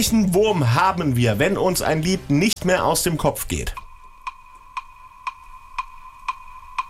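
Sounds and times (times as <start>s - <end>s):
speech: 0.0s - 3.8s
faint constant electronic hum: 3.7s - 6.8s
quiz countdown timer ticking: 3.7s - 6.8s.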